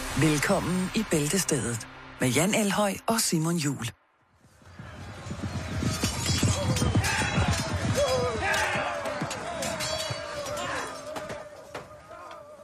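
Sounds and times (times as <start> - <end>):
speech: 0.2 - 4.0
hooves: 4.3 - 12.6
shouting voices: 5.7 - 12.6
clanging and crashing impacts in a medieval battle: 5.9 - 11.8.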